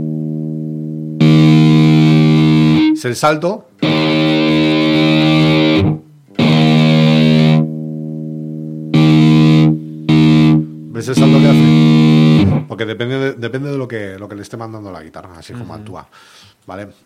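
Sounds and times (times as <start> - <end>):
distorted electric guitar through a tight noise gate: 0.0 - 3.1, 3.8 - 12.7
speech: 3.0 - 4.2, 12.8 - 17.0.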